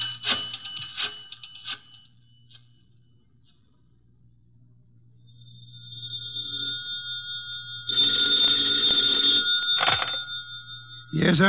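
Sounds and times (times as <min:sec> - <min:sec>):
steady low hum: 0:01.9 - 0:11.4
old-fashioned telephone bell ringing: 0:06.2 - 0:11.4
speech: 0:11.2 - 0:11.4.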